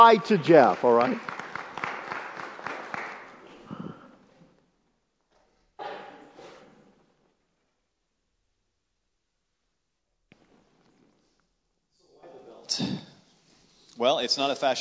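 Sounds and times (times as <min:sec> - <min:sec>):
speech: 0:00.0 - 0:01.4, 0:14.0 - 0:14.7
audience clapping: 0:00.0 - 0:04.3.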